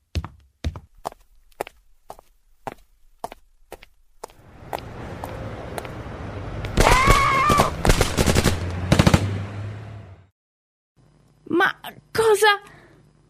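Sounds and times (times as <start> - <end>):
rapid gunshots in a tense urban scene: 6.8 - 9.4.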